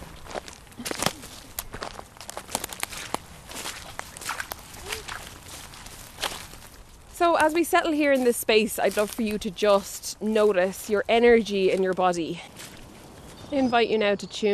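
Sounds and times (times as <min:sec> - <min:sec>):
footsteps walking through a forest in soft crunching steps: 0:00.0 - 0:13.8
speech: 0:07.2 - 0:12.5, 0:13.5 - 0:14.5.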